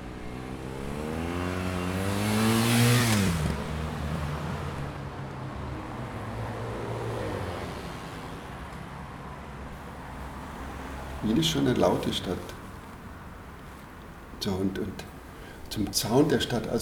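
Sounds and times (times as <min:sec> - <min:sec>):
car engine revving up and sweeping past: 0:00.0 - 0:08.4
city road traffic roar: 0:00.0 - 0:16.8
speech: 0:11.2 - 0:12.6, 0:14.4 - 0:15.1, 0:15.7 - 0:16.8.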